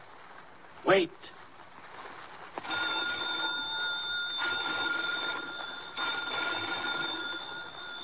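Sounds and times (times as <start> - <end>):
speech: 0.8 - 1.4
telephone bell ringing urgently in an old lighthouse: 2.6 - 8.0.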